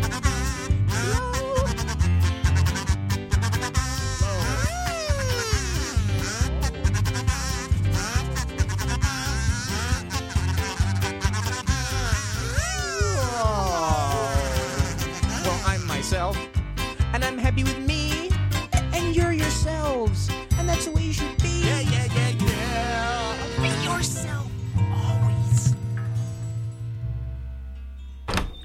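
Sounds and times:
kazoo buzzing a wobbly melody: 0.0s - 16.5s, 21.4s - 24.4s
bouncy instrumental backing: 0.0s - 28.2s.

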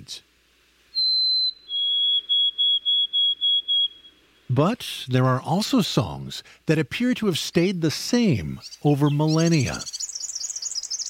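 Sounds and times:
speech: 0.1s - 0.3s, 4.5s - 10.0s
white-throated sparrow singing: 0.9s - 4.5s, 8.6s - 11.0s.

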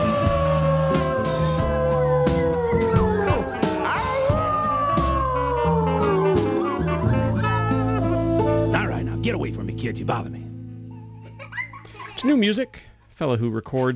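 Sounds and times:
person howling like a wolf: 0.0s - 8.7s
backing music with bass and drums: 0.0s - 10.8s
speech: 9.9s - 10.4s, 12.2s - 13.9s
laughter: 11.0s - 12.5s.

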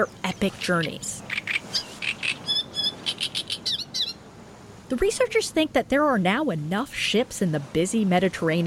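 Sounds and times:
speech: 0.0s - 1.2s, 4.9s - 8.6s
small land birds chirping and tweeting: 0.0s - 4.2s
soft hiss: 0.6s - 8.3s.

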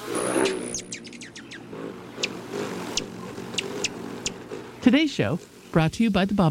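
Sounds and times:
rufous hummingbird wing whistling trill: 0.0s - 4.8s
rufous hummingbird chip calls: 0.0s - 5.8s
low rumble: 0.0s - 6.5s
speech: 4.9s - 6.5s.

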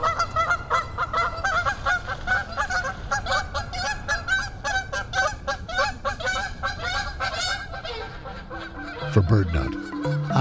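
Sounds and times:
flock of geese honking: 0.0s - 10.3s
speech: 9.2s - 10.3s.

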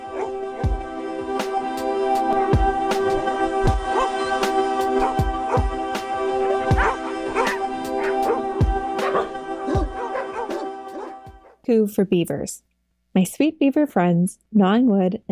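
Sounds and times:
dog barking and yipping: 0.0s - 0.7s, 2.2s - 5.9s, 6.5s - 11.6s
steady tonal hum: 0.0s - 11.4s
speech: 11.7s - 15.2s.

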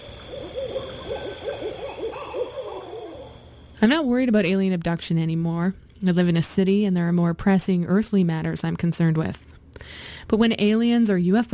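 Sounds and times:
owl hooting in dark woods at night: 0.0s - 3.8s
high droning of insects: 0.0s - 4.2s
speech: 3.8s - 11.5s.

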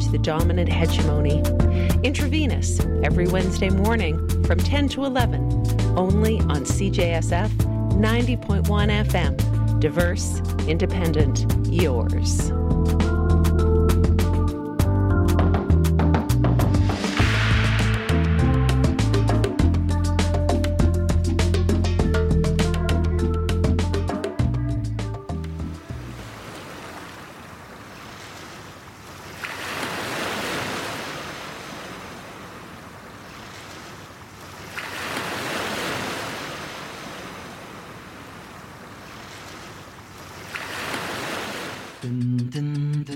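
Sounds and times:
brief snatches of music: 0.0s - 26.2s, 42.0s - 43.1s
speech: 0.1s - 13.0s
ocean waves rolling in and washing out: 16.8s - 19.7s, 25.6s - 42.0s.

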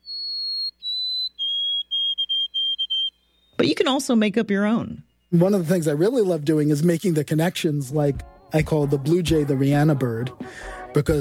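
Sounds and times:
White-throated Sparrow song of pure whistled notes: 0.0s - 3.7s, 5.0s - 5.8s
speech: 3.6s - 11.1s.

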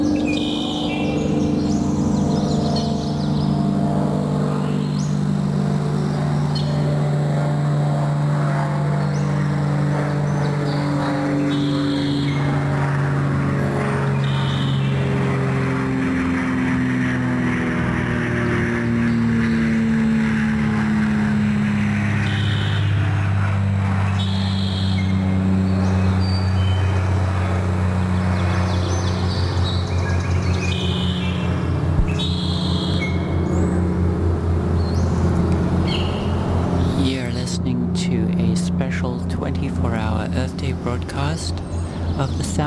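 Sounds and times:
faint bird chirps and song: 0.0s - 7.9s, 8.8s - 13.2s, 14.0s - 15.4s, 21.3s - 33.9s, 34.7s - 37.4s, 40.0s - 42.6s
airplane engine droning overhead: 0.0s - 42.6s.

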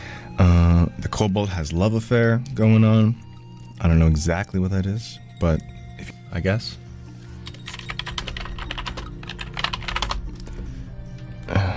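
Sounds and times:
speech: 1.1s - 6.8s
typing on a French-layout computer keyboard: 7.5s - 10.4s.

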